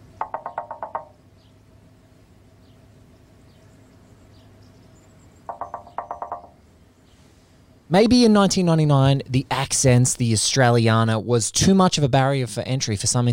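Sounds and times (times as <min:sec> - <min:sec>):
low steady rumble: 0:00.0 - 0:13.2
light quick knocking on a car window beside the driver: 0:00.2 - 0:01.1, 0:05.5 - 0:06.6
speech: 0:07.9 - 0:13.3.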